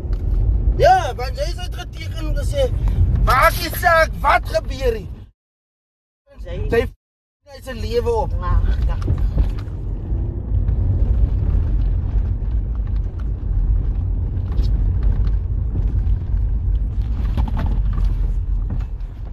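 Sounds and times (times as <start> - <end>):
steady loud low engine rumble: 0.0 - 5.3, 6.3 - 19.3
speech: 0.8 - 5.2, 6.4 - 9.3
clatter: 8.6 - 19.3.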